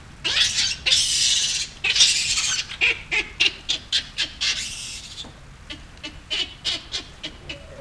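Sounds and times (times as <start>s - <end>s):
Papio papio calling sadly: 0.2s - 7.7s.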